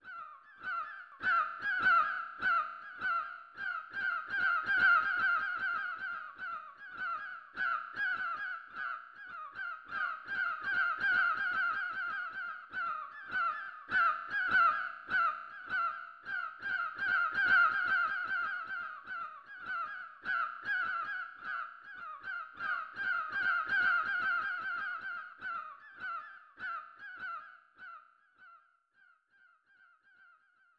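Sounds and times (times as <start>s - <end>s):
seagulls calling: 0.0s - 28.0s.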